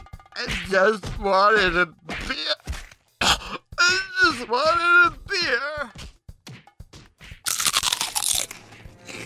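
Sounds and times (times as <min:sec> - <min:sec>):
speech: 0:00.4 - 0:02.5, 0:04.4 - 0:06.0
crunching of a crispy snack: 0:07.5 - 0:09.2.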